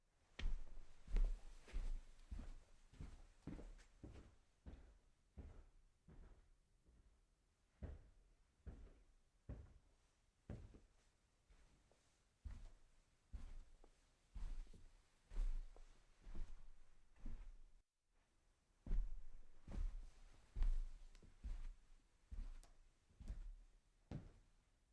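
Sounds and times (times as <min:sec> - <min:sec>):
footsteps walking from tile to carpet: 0:00.3 - 0:06.4, 0:10.5 - 0:17.8, 0:18.8 - 0:24.4.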